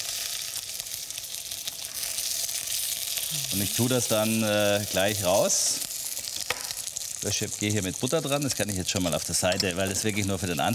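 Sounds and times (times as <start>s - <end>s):
meat searing in a hot pan for a brown sauce: 0.0s - 10.7s
speech: 3.3s - 5.8s, 7.2s - 10.7s.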